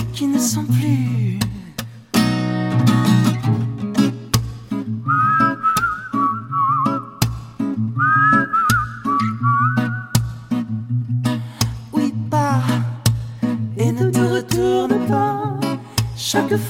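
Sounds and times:
speech: 0.2s - 1.2s
steady instrumental music: 1.8s - 16.6s
person whistling a wavering bright melody: 5.0s - 7.3s, 8.0s - 10.4s.

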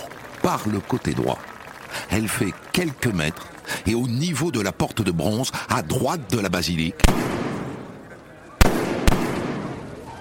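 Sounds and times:
crowd noise at an open-air papal appearance: 0.0s - 10.1s
speech: 0.4s - 7.4s
gunshots at a crowded open-air papal appearance: 7.0s - 10.0s.

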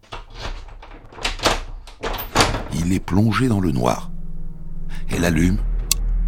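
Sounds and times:
apartment door being unlocked with metallic rattling: 0.0s - 4.1s
apartment door swinging open: 0.0s - 5.2s
speech: 2.9s - 4.1s, 5.1s - 5.7s.

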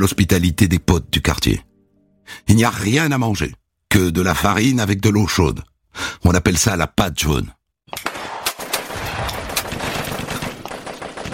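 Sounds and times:
speech: 0.0s - 1.7s, 2.3s - 8.1s
automatic weapons firing in combat: 8.0s - 11.3s
grenade explosions: 8.0s - 11.3s.

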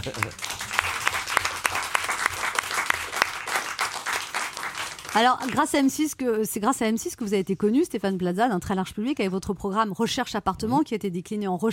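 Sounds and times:
speech: 0.0s - 0.6s, 5.2s - 11.7s
studio audience applause: 0.0s - 5.8s.

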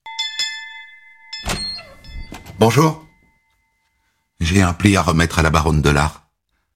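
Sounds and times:
apartment doorbell ringing: 0.0s - 4.4s
speech: 2.6s - 3.1s, 4.5s - 6.2s.

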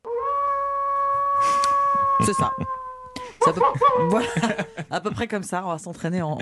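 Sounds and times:
person imitating a wolf howl: 0.2s - 4.3s
laughter: 2.2s - 2.7s, 3.3s - 5.4s
speech: 2.2s - 2.8s, 3.4s - 6.4s.

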